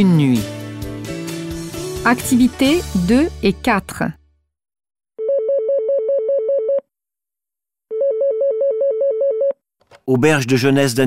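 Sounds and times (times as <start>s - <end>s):
speech: 0.0s - 0.6s, 2.0s - 4.2s, 10.1s - 11.0s
telephone ringing with electronic trill: 5.2s - 6.8s, 7.9s - 9.6s.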